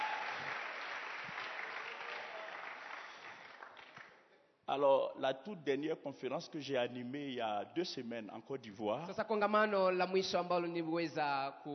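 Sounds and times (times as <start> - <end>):
congregation applauding at a church service: 0.0 - 4.3
speech: 4.7 - 11.7.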